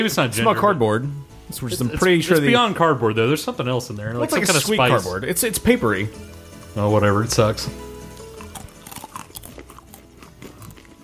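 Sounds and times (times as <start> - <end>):
speech: 0.0 - 7.9
crunchy cracker bitten and chewed: 8.1 - 11.0.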